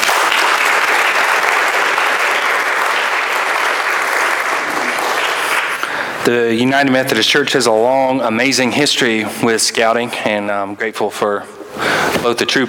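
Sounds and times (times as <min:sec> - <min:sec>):
audience applause: 0:00.0 - 0:06.0
speech: 0:06.3 - 0:12.6.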